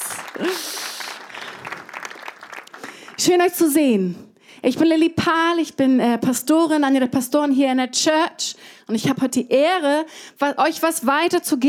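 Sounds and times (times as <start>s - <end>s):
congregation applause at a church service: 0.0s - 3.3s
speech: 3.2s - 11.6s.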